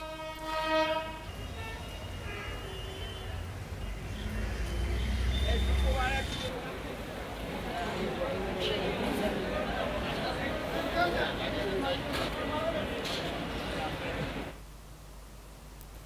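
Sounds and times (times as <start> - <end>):
special passenger train horn blast at Chattogram railway station: 0.0 - 6.0
special passenger train departing Chattogram railway station rumbling: 0.0 - 14.6.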